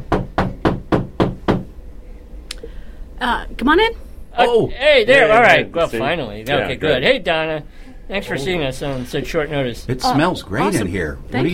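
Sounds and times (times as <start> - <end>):
firm loud knocks on a door with a hollow ring: 0.0 - 1.7
speech: 3.2 - 11.5.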